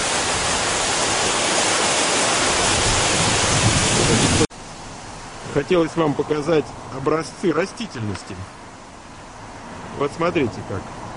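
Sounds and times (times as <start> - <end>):
waterfall flowing under a small footbridge: 0.0 - 4.5
speech: 5.5 - 8.6, 10.0 - 11.0.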